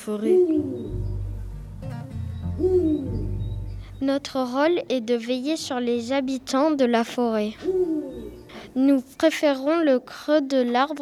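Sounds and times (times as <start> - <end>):
speech: 0.0 - 1.2, 1.8 - 3.4, 4.0 - 8.1, 8.7 - 11.0
owl hooting: 0.2 - 1.2, 2.3 - 4.0, 7.6 - 8.8.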